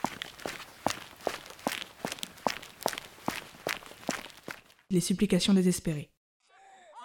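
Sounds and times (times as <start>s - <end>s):
hurried footsteps: 0.0s - 4.9s
speech: 4.9s - 6.1s.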